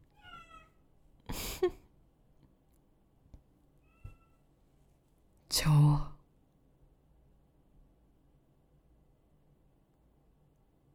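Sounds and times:
cats in heat caterwauling outside: 0:00.1 - 0:00.8, 0:03.8 - 0:04.4
speech: 0:05.6 - 0:06.1.

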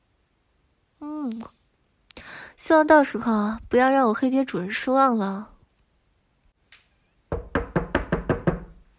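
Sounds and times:
speech: 0:02.6 - 0:05.5
firm knocks on a door: 0:07.3 - 0:08.8.

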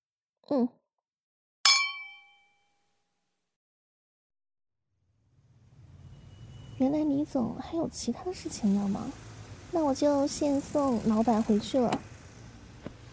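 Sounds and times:
speech: 0:00.5 - 0:00.8, 0:06.8 - 0:12.1
glasses clinking in a toast: 0:01.7 - 0:02.5.

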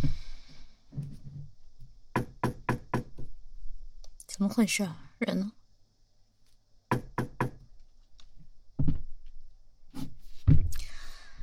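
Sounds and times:
knocking on a door: 0:02.1 - 0:03.3, 0:06.9 - 0:07.6, 0:08.8 - 0:09.1
speech: 0:04.4 - 0:05.6.

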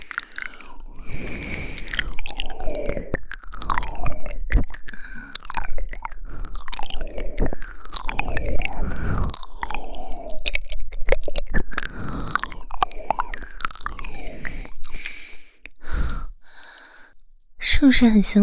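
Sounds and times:
biting and crunching ice cubes: 0:00.0 - 0:15.4
speech: 0:17.8 - 0:18.4.

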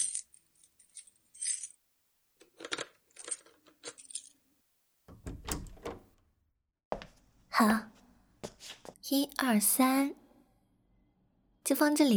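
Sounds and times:
keys jingling and clicking against a lock: 0:00.0 - 0:01.7, 0:02.5 - 0:04.4
speech: 0:07.6 - 0:07.9, 0:09.1 - 0:10.2, 0:11.7 - 0:12.1.

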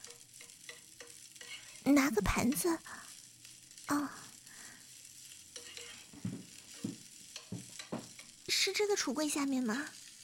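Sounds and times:
clatters and scrapes of stirring food in a pan: 0:00.0 - 0:01.9, 0:05.4 - 0:08.4
food frying in a pan during home cooking: 0:00.0 - 0:10.2
speech: 0:01.8 - 0:03.0, 0:03.9 - 0:04.2, 0:08.6 - 0:10.0.

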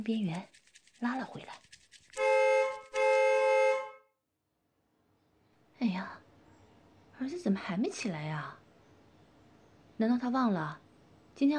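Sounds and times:
speech: 0:00.0 - 0:01.6, 0:07.2 - 0:08.6, 0:10.0 - 0:10.8, 0:11.4 - 0:11.5
car horn honking: 0:02.2 - 0:04.0.

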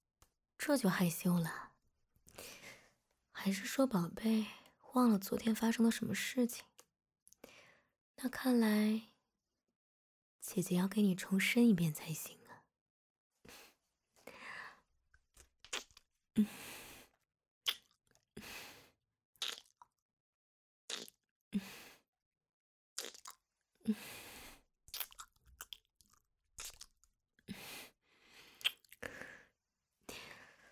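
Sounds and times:
speech: 0:00.6 - 0:01.7, 0:03.4 - 0:06.7, 0:08.2 - 0:09.1, 0:10.4 - 0:12.4, 0:16.4 - 0:16.8, 0:23.9 - 0:24.2
wet kissing and licking mouth sounds: 0:15.6 - 0:16.0, 0:17.7 - 0:18.0, 0:19.4 - 0:19.7, 0:20.9 - 0:21.2, 0:23.0 - 0:23.3, 0:28.6 - 0:29.0.

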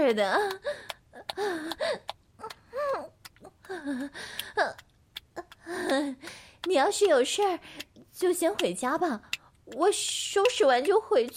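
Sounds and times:
speech: 0:00.1 - 0:02.2, 0:03.7 - 0:04.9, 0:05.7 - 0:11.3
breathless voice panting and gasping: 0:00.4 - 0:06.7, 0:07.4 - 0:08.1.

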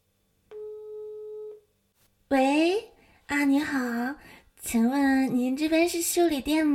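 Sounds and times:
electronic phone ringback tone while calling a repair shop: 0:00.5 - 0:01.6
speech: 0:02.3 - 0:06.7.

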